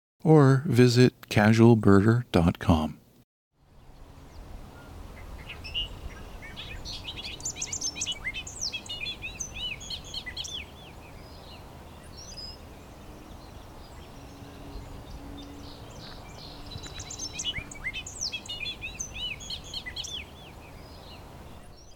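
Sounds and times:
bobolink singing: 0:00.2 - 0:03.0
speech: 0:00.2 - 0:03.0
steady outdoor hiss: 0:00.3 - 0:21.9.

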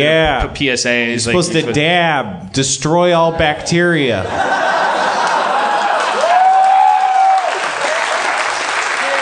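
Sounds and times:
speech: 0:00.0 - 0:04.8
laughter: 0:03.2 - 0:06.4
crowd applause: 0:04.5 - 0:09.2.

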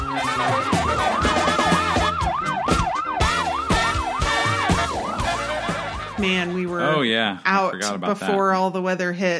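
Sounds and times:
wailing emergency siren: 0:00.0 - 0:06.7
music-like tones and thumping beats: 0:00.0 - 0:06.8
speech: 0:06.2 - 0:09.3.

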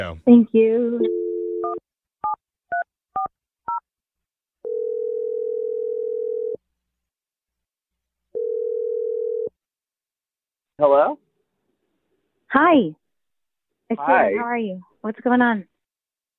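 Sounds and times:
speech: 0:00.0 - 0:02.0, 0:10.8 - 0:11.2, 0:12.5 - 0:13.0, 0:13.9 - 0:15.7
telephone dial tone: 0:04.6 - 0:06.6, 0:08.4 - 0:09.5.

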